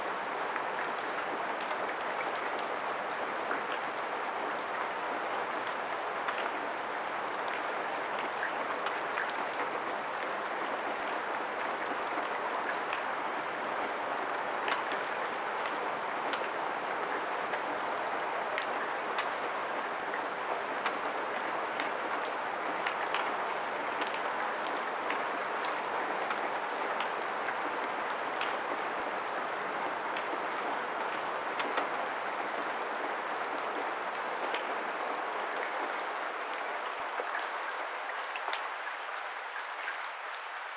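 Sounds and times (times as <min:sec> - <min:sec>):
rain: 0:00.0 - 0:40.7.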